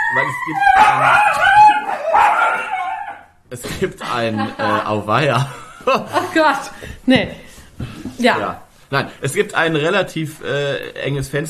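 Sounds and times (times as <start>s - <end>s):
female dog whining barks: 0.0s - 3.3s
speech: 0.1s - 2.7s, 3.5s - 11.4s.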